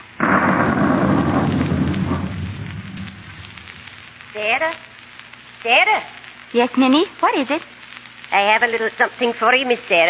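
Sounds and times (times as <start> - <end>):
heavy roll of thunder: 0.2 - 4.2
rain falling: 0.2 - 9.8
speech: 4.4 - 4.9, 5.6 - 7.7, 8.3 - 10.0.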